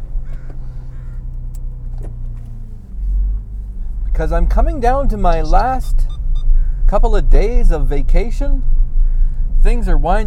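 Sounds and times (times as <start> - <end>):
car power windows rolling up: 0.0 - 3.9
low rumble of a vehicle interior: 0.0 - 10.2
speech: 4.2 - 6.1, 6.9 - 8.8, 9.6 - 10.2.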